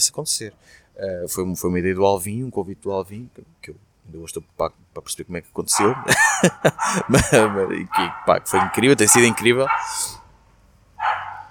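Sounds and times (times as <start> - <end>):
speech: 0.0 - 10.2
dog barking: 5.7 - 10.2, 11.0 - 11.4
laughter: 5.8 - 8.0.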